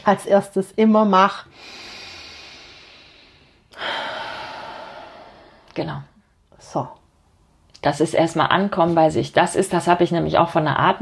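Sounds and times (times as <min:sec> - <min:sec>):
speech: 0:00.0 - 0:01.9, 0:05.8 - 0:06.1, 0:06.7 - 0:07.0, 0:07.8 - 0:10.9
person breathing deeply: 0:01.5 - 0:05.7.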